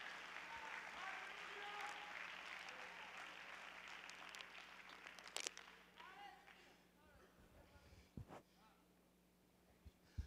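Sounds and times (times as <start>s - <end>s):
scattered cheers: 0.0s - 6.4s
large group clapping hands in praise: 0.0s - 6.6s.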